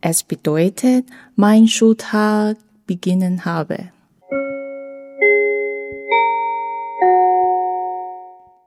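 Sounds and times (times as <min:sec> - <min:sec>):
speech: 0:00.0 - 0:04.0
church bell in Basel Switzerland ringing: 0:04.3 - 0:08.6.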